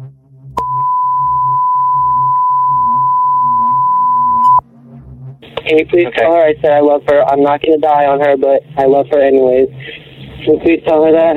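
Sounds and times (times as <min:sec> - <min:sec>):
cell phone long high-pitched electronic tone: 0:00.6 - 0:04.6
speech: 0:05.7 - 0:11.3.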